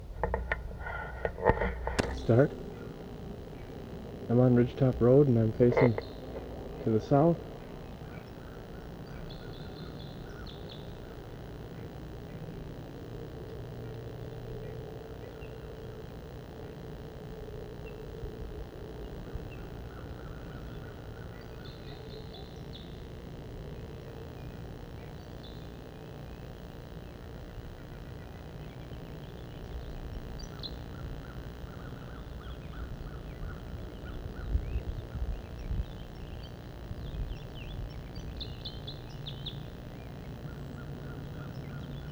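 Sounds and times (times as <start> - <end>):
wild crossbill song: 0.0 - 8.0
wild purple finch song: 0.0 - 12.5, 19.0 - 42.1
steady low outdoor rumble: 0.0 - 42.1
speech: 2.3 - 2.7, 4.3 - 6.2, 6.8 - 7.5.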